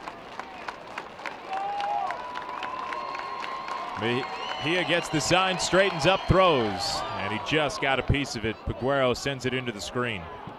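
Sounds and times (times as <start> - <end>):
baseball stadium crowd clapping at opening night: 0.0 - 7.9
baseball stadium crowd cheering: 0.0 - 10.5
speech: 4.0 - 10.4.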